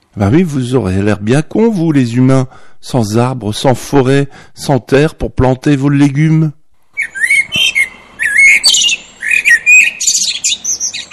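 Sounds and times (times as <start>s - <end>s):
speech: 0.2s - 6.6s
birds chirping and squawking: 6.9s - 11.1s.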